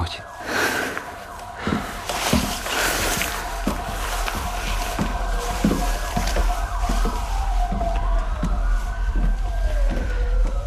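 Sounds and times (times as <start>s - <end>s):
ambulance sirens wailing: 0.0s - 10.6s.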